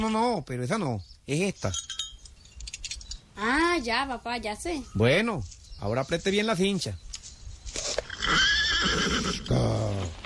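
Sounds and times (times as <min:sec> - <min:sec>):
speech: 0:00.0 - 0:02.0, 0:03.4 - 0:07.0
horse whinnying and snorting neigh: 0:08.0 - 0:10.2.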